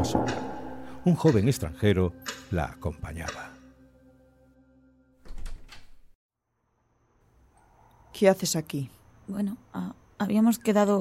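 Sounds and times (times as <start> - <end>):
woman knocking on the door of a home: 0.0 - 1.0
speech: 0.0 - 3.6, 8.2 - 11.0
soft music: 0.0 - 5.2.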